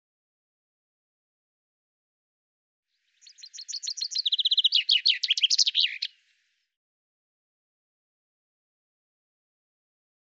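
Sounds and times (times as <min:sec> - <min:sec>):
common chaffinch song: 0:03.0 - 0:06.7.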